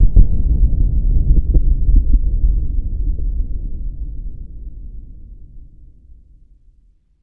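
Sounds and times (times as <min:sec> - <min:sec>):
distant explosion: 0:00.0 - 0:03.0.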